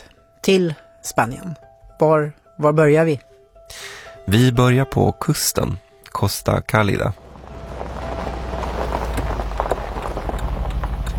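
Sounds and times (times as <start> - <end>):
speech: 0.4 - 7.2
car driving along a gravel road past farmland on the Costa Cálida coast of Spain: 6.7 - 11.1
stones crunching and popping under the tires: 6.8 - 11.1.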